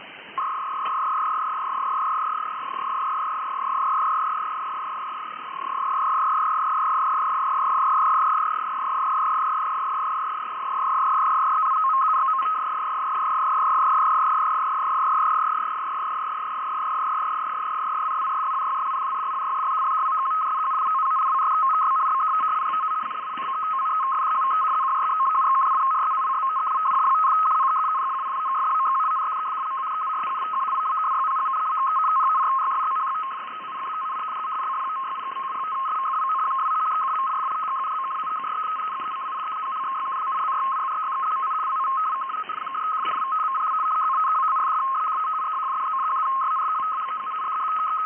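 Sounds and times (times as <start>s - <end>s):
75 baud FSK modem data burst: 0.0s - 48.0s.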